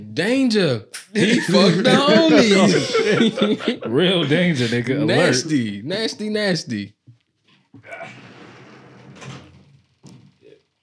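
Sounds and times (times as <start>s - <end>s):
speech: 0.2s - 7.0s
laughter: 1.1s - 5.5s
door being pulled shut: 7.8s - 10.5s.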